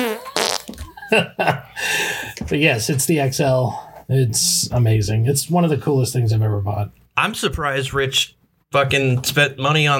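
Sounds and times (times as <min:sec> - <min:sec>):
wet sputtering fart sound effects from a soundboard button: 0:00.0 - 0:00.8
speech: 0:01.1 - 0:09.9.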